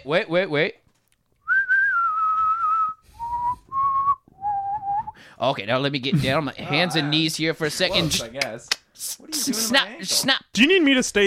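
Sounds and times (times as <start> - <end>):
speech: 0.0 - 0.8, 5.4 - 11.2
clear whistled notes: 1.4 - 5.2.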